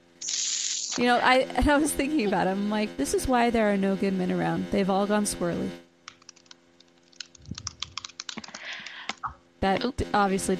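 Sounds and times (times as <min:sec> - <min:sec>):
speech: 0:01.0 - 0:05.8, 0:09.6 - 0:10.5
someone typing a message on a computer keyboard: 0:06.1 - 0:09.2.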